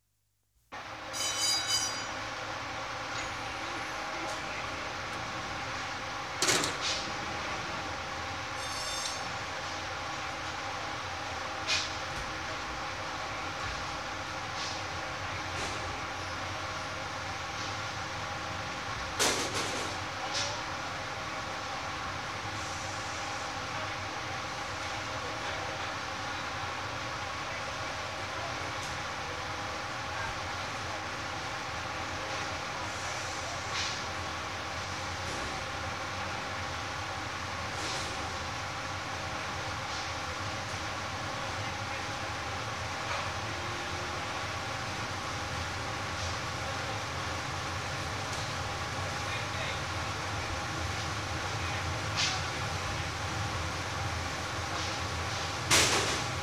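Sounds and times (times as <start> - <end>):
factory workshop: 0.7 - 56.4.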